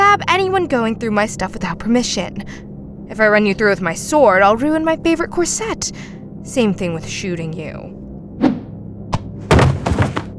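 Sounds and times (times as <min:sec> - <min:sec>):
speech: 0:00.5 - 0:08.0
thrown potato hitting someone with dull thuds: 0:08.4 - 0:10.3.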